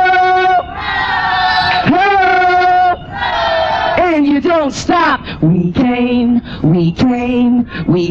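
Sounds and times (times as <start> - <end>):
crowd shouting ho in unison in response to a call: 0.0 - 4.3
speech: 4.6 - 8.0.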